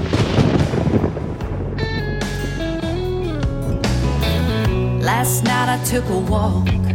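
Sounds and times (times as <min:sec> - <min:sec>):
loud rolling thunder rumbling: 0:00.0 - 0:04.2
speech: 0:05.2 - 0:06.9.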